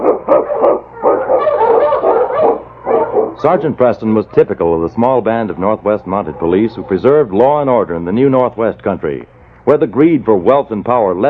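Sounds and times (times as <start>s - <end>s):
husky sled dogs barking, yelping and howling: 0.0s - 4.2s, 5.6s - 7.6s
speech: 3.4s - 11.2s.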